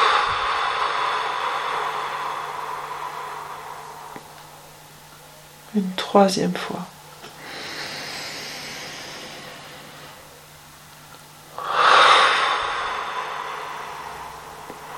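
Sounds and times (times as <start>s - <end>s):
forceful breathing as a breathing exercise: 0.0s - 4.8s, 7.2s - 10.5s, 11.5s - 14.9s
speech: 5.7s - 7.0s.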